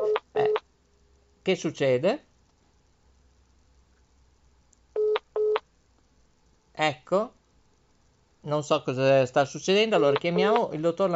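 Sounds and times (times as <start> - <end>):
telephone call waiting signal tones: 0.0 - 0.6
speech: 1.5 - 2.3, 7.1 - 7.4, 8.5 - 11.1.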